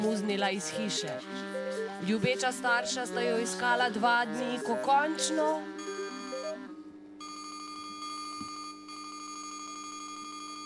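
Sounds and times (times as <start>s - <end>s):
speech: 0.0s - 5.7s
telephone stepped electronic melody: 0.0s - 7.2s
telephone warbling electronic trill: 0.7s - 10.6s.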